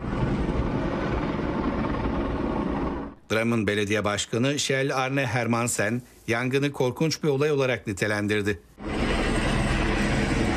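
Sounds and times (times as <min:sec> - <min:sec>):
firefighting helicopters rotor and engine roar battling a wildfire near Drammen: 0:00.0 - 0:03.2, 0:08.8 - 0:10.5
speech: 0:03.3 - 0:08.7.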